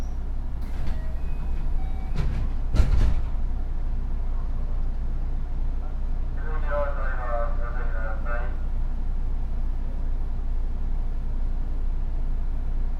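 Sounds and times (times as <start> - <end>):
rapid commuter train running rumble: 0.0 - 12.9
faint wavering tone: 0.6 - 2.2.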